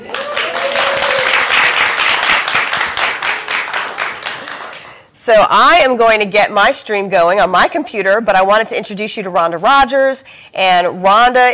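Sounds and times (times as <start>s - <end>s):
person whooping or cheering in audience: 0.0s - 1.6s
live audience applauding: 0.0s - 5.0s
speech: 5.3s - 11.5s.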